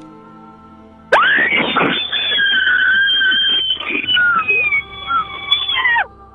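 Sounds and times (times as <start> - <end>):
loud distorted human scream in a screaming contest through a phone microphone: 1.2 - 6.1.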